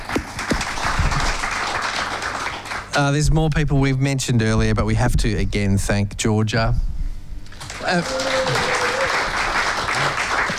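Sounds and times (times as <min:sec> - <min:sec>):
audience at a folk music evening applauding: 0:00.0 - 0:02.9, 0:07.5 - 0:10.5
speech: 0:03.0 - 0:06.9, 0:07.9 - 0:08.6.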